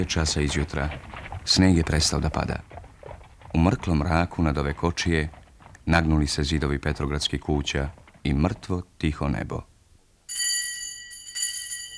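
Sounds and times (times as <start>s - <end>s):
speech: 0.0s - 2.7s, 3.5s - 9.7s
doorbell ringing at a house door in St Petersburg: 10.3s - 11.9s.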